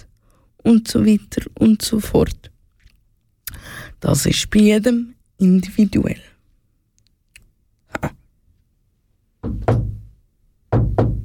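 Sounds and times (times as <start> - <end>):
speech: 0.6 - 2.5, 4.0 - 6.3
knocking on a door in double raps: 9.4 - 11.2.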